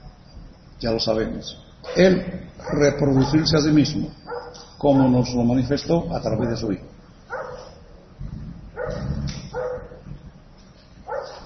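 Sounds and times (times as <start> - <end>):
speech: 0.8 - 4.2, 4.8 - 6.9
small dog barking: 4.3 - 5.1, 7.3 - 7.8, 8.8 - 10.0, 11.1 - 11.4
low rumble: 6.0 - 11.4.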